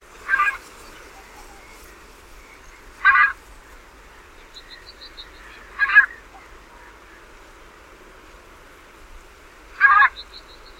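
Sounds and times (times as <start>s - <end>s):
Greylag Goose: 0.2s - 2.0s, 3.0s - 3.4s, 5.4s - 7.2s, 9.8s - 10.2s.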